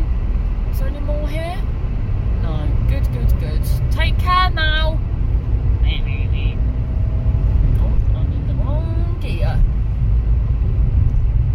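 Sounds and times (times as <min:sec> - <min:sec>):
car engine rumble while driving: 0:00.0 - 0:11.5
road noise in a car cabin: 0:00.0 - 0:11.5.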